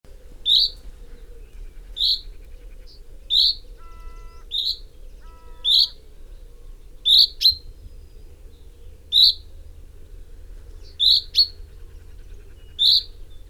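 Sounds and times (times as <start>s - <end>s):
common chaffinch Fringilla coelebs giving pink calls: 0.4s - 0.9s, 1.8s - 6.0s, 9.1s - 9.4s, 10.9s - 13.4s.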